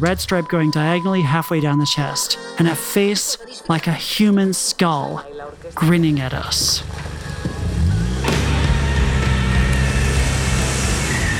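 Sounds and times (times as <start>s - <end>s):
speech: 0.0s - 7.0s
tires churning dirt: 5.6s - 11.3s
car engine revving hard while reversing fast: 6.7s - 11.3s.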